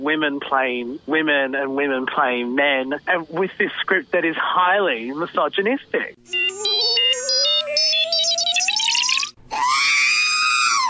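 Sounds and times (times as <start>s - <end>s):
speech: 0.0s - 6.4s
sci-fi robot droid screaming electronically: 6.3s - 10.8s.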